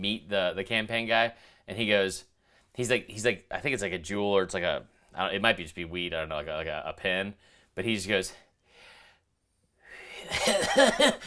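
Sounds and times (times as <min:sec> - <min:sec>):
speech: 0:00.0 - 0:08.4, 0:10.2 - 0:11.2
person imitating a weak, pathetic cough: 0:10.2 - 0:11.2.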